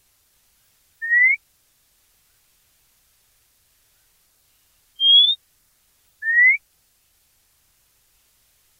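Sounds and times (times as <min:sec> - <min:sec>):
white monjita short rising whistles: 0:01.0 - 0:01.4, 0:05.0 - 0:05.4, 0:06.2 - 0:06.6.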